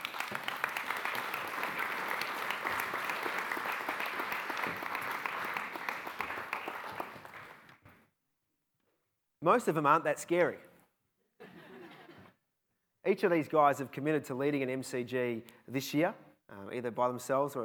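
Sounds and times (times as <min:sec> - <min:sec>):
crowd applauding: 0:00.0 - 0:07.8
speech: 0:09.5 - 0:10.7, 0:13.1 - 0:17.6.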